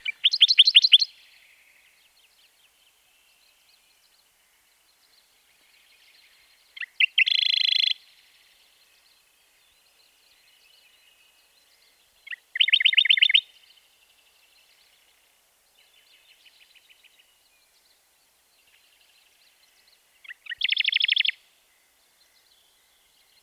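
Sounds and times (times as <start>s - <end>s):
Radde's warbler calling: 0.0s - 1.2s, 6.3s - 8.0s, 12.2s - 13.4s, 20.2s - 21.4s.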